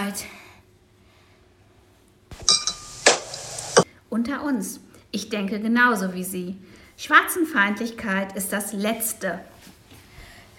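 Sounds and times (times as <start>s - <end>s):
speech: 0.1s - 0.4s, 4.1s - 9.8s
glass of water set down on a hard surface in a café in Birmingham: 2.4s - 3.2s.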